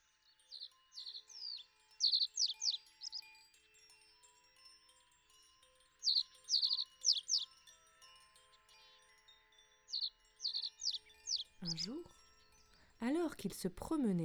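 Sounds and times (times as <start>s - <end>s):
songbird singing with quick high chirping notes: 0.4s - 3.3s, 6.0s - 7.5s, 9.9s - 14.2s
speech: 11.7s - 12.2s, 13.0s - 14.2s.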